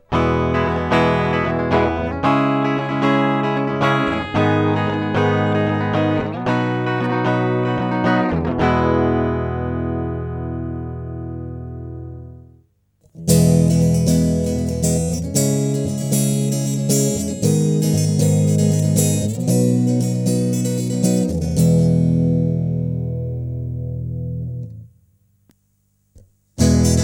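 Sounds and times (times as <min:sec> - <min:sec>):
jumbo acoustic guitar through piezo pickup with enhance setting: 0:00.0 - 0:25.0, 0:26.6 - 0:27.0.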